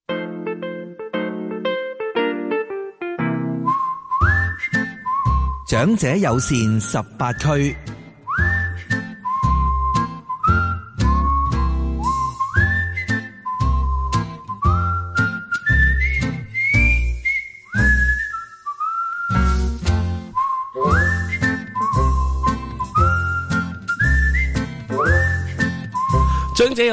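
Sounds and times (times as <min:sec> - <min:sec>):
steady bouncy instrumental backing with a regular beat: 0:00.0 - 0:16.9, 0:19.3 - 0:26.9
bright whistled melody: 0:00.1 - 0:26.9
speech: 0:05.7 - 0:07.9.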